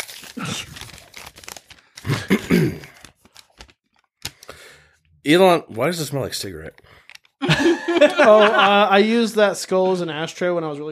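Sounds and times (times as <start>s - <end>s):
crinkling paper being handled and unfolded: 0.0s - 2.3s, 2.9s - 4.5s
speech: 5.3s - 7.0s, 7.6s - 10.9s
laughter: 7.4s - 9.2s.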